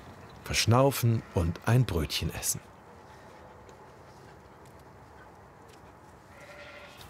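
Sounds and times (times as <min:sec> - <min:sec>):
speech: 0:00.5 - 0:02.7
sheep bleating: 0:06.3 - 0:07.0.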